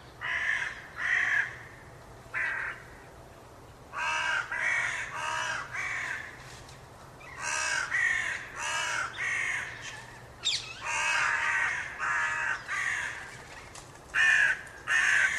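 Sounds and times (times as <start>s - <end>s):
carrion crow Corvus corone cawing: 0.2s - 3.0s, 3.9s - 6.4s, 7.3s - 10.1s, 10.7s - 13.3s, 14.1s - 15.3s.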